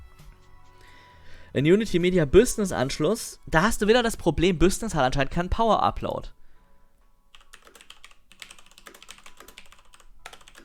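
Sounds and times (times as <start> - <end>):
speech: 1.5 - 6.4
typing on a computer keyboard: 7.3 - 10.6.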